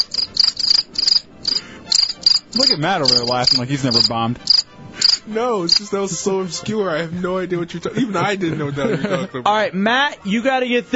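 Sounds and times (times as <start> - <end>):
crickets chirping: 0.0 - 5.9
speech: 2.6 - 4.6, 5.3 - 10.9
laughter: 7.8 - 9.5.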